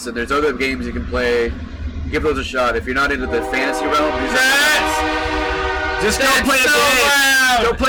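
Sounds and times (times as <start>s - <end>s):
low rumble: 0.0s - 7.8s
speech: 0.0s - 7.8s
train horn blaring in a video game: 3.0s - 7.6s.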